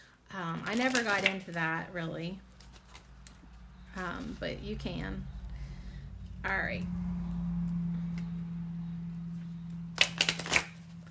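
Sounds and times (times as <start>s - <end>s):
low steady hum: 0.0s - 11.0s
speech: 0.3s - 2.5s, 4.0s - 5.4s, 6.4s - 7.1s
shuffling a deck of tarot cards: 0.7s - 1.8s, 2.5s - 4.4s, 9.9s - 11.0s.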